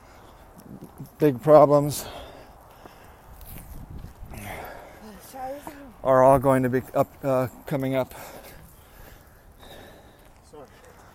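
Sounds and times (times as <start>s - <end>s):
footsteps crunching outdoors walking up a big hill: 0.0s - 11.1s
speech: 1.2s - 2.2s, 6.1s - 8.4s
heavy labored breathing from a person walking up a big hill: 1.9s - 6.0s, 8.0s - 11.1s.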